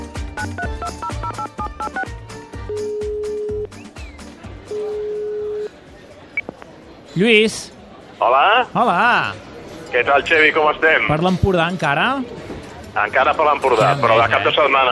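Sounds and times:
speech: 0:00.4 - 0:00.8, 0:07.2 - 0:12.4, 0:13.0 - 0:14.9
touch-tone telephone keypad beeps in paired pitches: 0:00.4 - 0:02.1, 0:02.7 - 0:03.7, 0:04.7 - 0:05.7.

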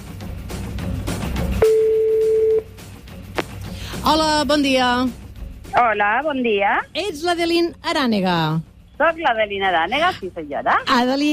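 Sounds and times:
mobile phone call ringing tone: 0:01.6 - 0:02.7
speech: 0:04.1 - 0:05.2, 0:05.8 - 0:11.3.

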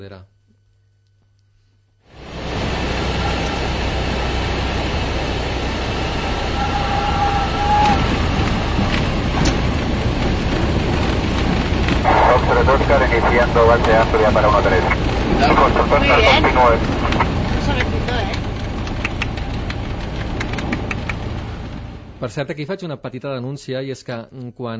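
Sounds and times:
speech: 0:00.0 - 0:00.4, 0:12.4 - 0:18.1, 0:22.2 - 0:24.7
small propeller plane engine droning: 0:02.1 - 0:22.3
small propeller plane rattling and shaking as it touches down: 0:04.1 - 0:22.1
voices murmuring faintly: 0:12.0 - 0:18.4.

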